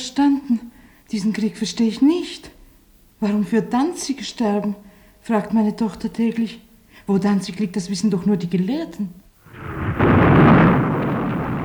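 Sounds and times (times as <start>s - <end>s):
speech: 0.2s - 2.5s, 3.2s - 9.2s
anti-aircraft battery gunfire near Saint-Lazare station in Paris during wartime: 9.5s - 11.6s.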